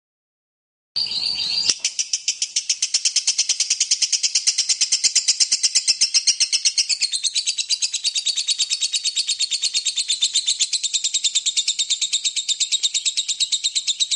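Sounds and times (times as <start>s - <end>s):
lovebird chattering song in ngekek style: 1.0s - 14.1s.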